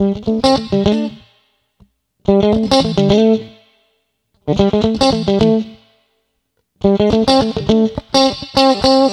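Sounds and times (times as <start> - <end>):
electric guitar: 0.0 - 1.3, 2.2 - 3.7, 4.4 - 5.9, 6.8 - 9.1.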